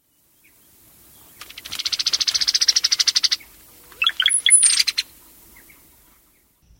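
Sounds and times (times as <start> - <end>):
cowbird calling: 1.6 - 6.3.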